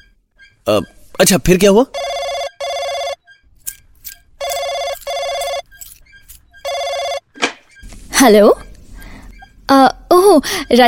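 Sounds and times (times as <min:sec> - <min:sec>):
speech: 0:00.7 - 0:02.1, 0:08.2 - 0:08.6, 0:10.4 - 0:10.8
telephone ringing in classic double-ring pattern: 0:01.8 - 0:03.6, 0:04.2 - 0:07.4.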